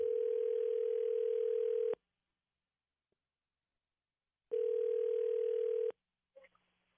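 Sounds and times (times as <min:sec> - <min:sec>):
telephone ringback tone through the earpiece: 0:00.0 - 0:02.0, 0:04.5 - 0:05.9.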